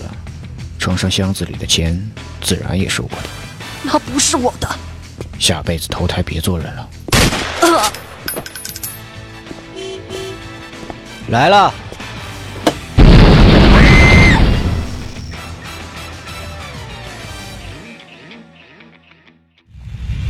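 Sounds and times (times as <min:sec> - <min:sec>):
speech: 0:00.8 - 0:07.0, 0:11.3 - 0:11.8
bomb hidden on a suitcase exploding: 0:13.0 - 0:15.3.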